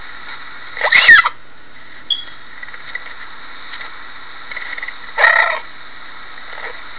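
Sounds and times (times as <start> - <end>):
cougar cry: 5.2 - 5.7.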